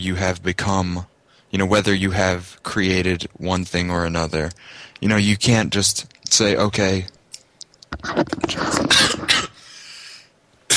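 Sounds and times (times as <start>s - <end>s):
speech: 0.0s - 7.2s, 7.9s - 9.0s
man clearing throat: 8.5s - 9.6s
man coughing harshly: 8.5s - 9.7s.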